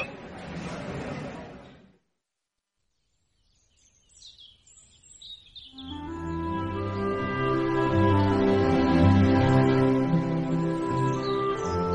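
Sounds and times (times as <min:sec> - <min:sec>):
small birds twittering: 0:02.8 - 0:06.6, 0:10.5 - 0:11.9
soft sustained elven-style music: 0:05.8 - 0:11.9.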